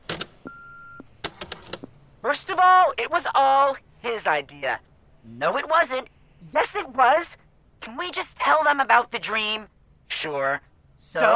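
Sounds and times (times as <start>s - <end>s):
answering machine beep: 0.5s - 1.1s
speech: 2.3s - 11.3s.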